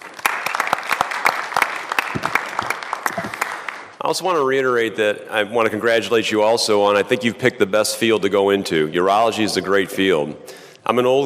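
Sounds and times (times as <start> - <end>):
audience at a morning talk applauding: 0.0 - 3.9
speech: 4.1 - 11.2.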